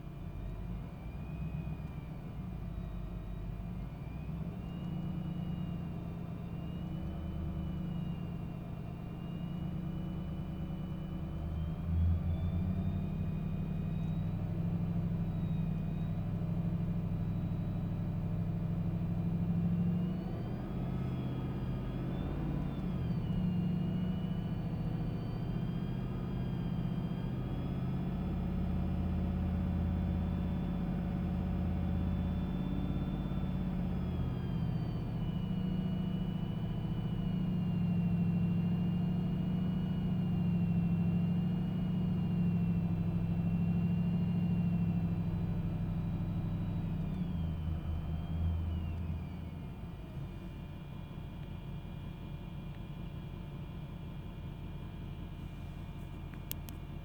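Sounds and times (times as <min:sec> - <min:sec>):
whining noise: 0:00.4 - 0:56.8.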